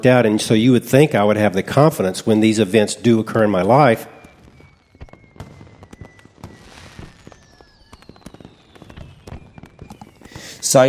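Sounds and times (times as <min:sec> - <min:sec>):
speech: 0:00.0 - 0:04.1
distant fireworks booming and crackling: 0:00.0 - 0:10.8
faint whistling streaks of fireworks rising: 0:03.0 - 0:10.8.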